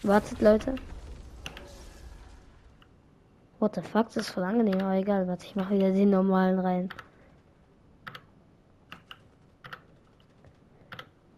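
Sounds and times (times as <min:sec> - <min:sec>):
speech: 0:00.0 - 0:00.9, 0:03.6 - 0:07.1
computer keyboard keys pressed while adjusting LED lighting settings: 0:08.0 - 0:08.3, 0:08.9 - 0:10.3.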